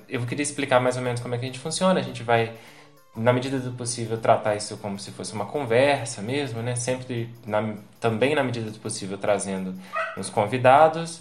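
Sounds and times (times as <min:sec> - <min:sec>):
speech: 0:00.1 - 0:11.1
dog barking and yipping at home: 0:09.9 - 0:10.4.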